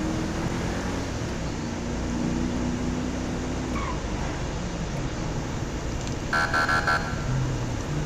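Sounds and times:
car engine droning in game audio: 0:00.0 - 0:08.0
road rumble in game audio: 0:00.0 - 0:08.0
electronic beeping in game audio: 0:06.3 - 0:07.3.

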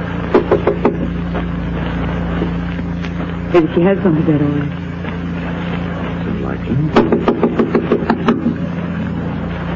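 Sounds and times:
steady low mechanical hum and rumble: 0:00.0 - 0:09.7
knocking on a door: 0:00.3 - 0:01.1, 0:07.0 - 0:08.6
speech: 0:03.6 - 0:04.8, 0:06.6 - 0:08.4.

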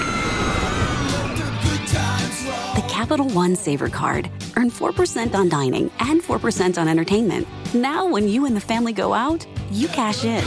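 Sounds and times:
crowd screaming and whooping on a fast amusement park ride: 0:00.0 - 0:02.8
speech: 0:03.0 - 0:10.4.

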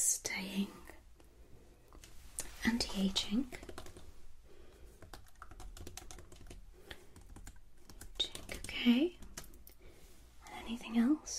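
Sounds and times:
speech: 0:00.0 - 0:00.8, 0:03.0 - 0:03.7, 0:08.8 - 0:09.2, 0:10.7 - 0:11.3
rapid typing on a computer keyboard at a luxury hotel check-in: 0:03.4 - 0:04.1, 0:04.9 - 0:09.7.

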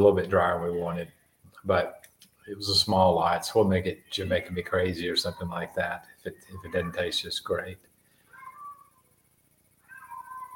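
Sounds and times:
speech: 0:00.0 - 0:07.9
faint hiss: 0:00.0 - 0:10.5
cats meowing outside wanting to be fed: 0:05.3 - 0:07.2, 0:08.3 - 0:09.0, 0:09.8 - 0:10.5.

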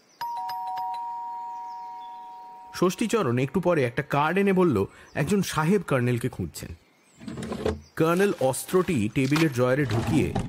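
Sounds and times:
doorbell ringing at a house: 0:00.2 - 0:02.8
speech: 0:02.8 - 0:06.8, 0:08.0 - 0:10.4.

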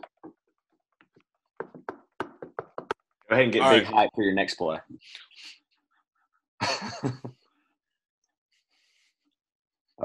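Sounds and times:
knuckles knocking on wood: 0:01.6 - 0:03.0
speech: 0:03.3 - 0:05.6, 0:06.8 - 0:07.4.

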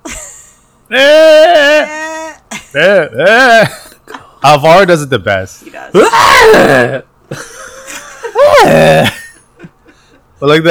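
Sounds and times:
laughter: 0:00.1 - 0:04.0, 0:05.7 - 0:10.4
speech: 0:00.9 - 0:01.2, 0:02.8 - 0:03.8, 0:04.4 - 0:09.2, 0:10.4 - 0:10.6
person imitating a screaming goat: 0:00.9 - 0:02.5, 0:06.0 - 0:07.0, 0:08.4 - 0:09.0.

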